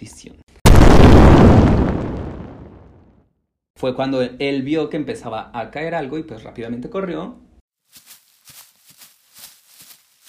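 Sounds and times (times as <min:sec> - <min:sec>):
loud explosion: 0:00.7 - 0:03.1
speech: 0:03.8 - 0:08.0.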